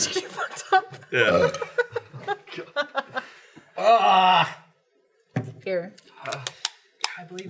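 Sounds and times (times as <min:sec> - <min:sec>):
laughter: 0:00.0 - 0:03.4
speech: 0:01.1 - 0:01.7
wet burp: 0:01.2 - 0:01.7.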